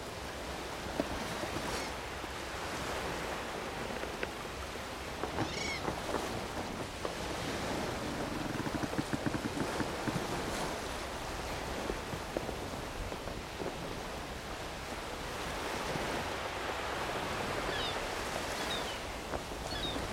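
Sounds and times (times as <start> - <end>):
sailing sounds: 0.0 - 20.1.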